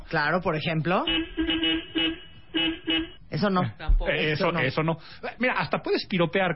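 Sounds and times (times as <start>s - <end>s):
speech: 0.1s - 6.5s
car horn honking: 1.0s - 3.3s.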